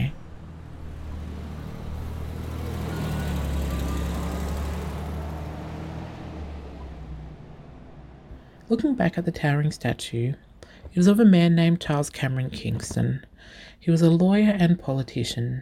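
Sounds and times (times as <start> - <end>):
road traffic passing: 0.0 - 8.9
speech: 8.7 - 15.6.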